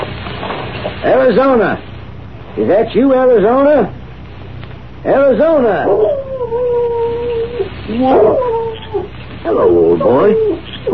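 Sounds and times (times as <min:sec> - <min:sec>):
speech: 0:01.0 - 0:01.9, 0:02.6 - 0:04.0, 0:05.0 - 0:06.8, 0:07.9 - 0:10.9
dog howling: 0:05.5 - 0:10.9.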